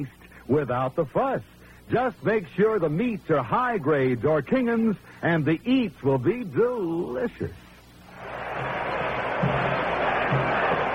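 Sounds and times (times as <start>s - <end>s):
speech: 0.0s - 7.7s
crowd of more than 55,000 roaring at a football game in a stadium: 8.1s - 10.9s.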